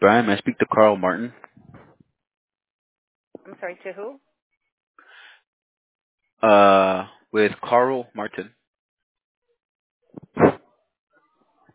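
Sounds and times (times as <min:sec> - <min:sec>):
speech: 0:00.0 - 0:01.5, 0:03.5 - 0:04.3, 0:06.4 - 0:08.6
quick breathy inhales: 0:05.0 - 0:05.4
single sharp loud sneeze: 0:10.2 - 0:10.6.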